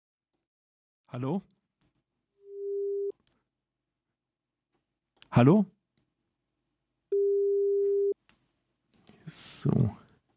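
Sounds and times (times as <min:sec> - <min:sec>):
speech: 0:01.1 - 0:01.6, 0:05.3 - 0:05.8
telephone busy tone on a failed call: 0:07.2 - 0:08.2.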